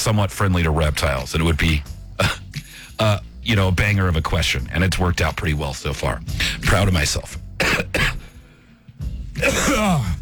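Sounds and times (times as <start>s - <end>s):
speech: 0.0s - 7.4s
person clearing throat: 2.2s - 2.6s, 7.6s - 8.3s, 9.4s - 10.2s
person coughing: 2.2s - 2.6s, 7.6s - 8.4s, 9.4s - 10.2s.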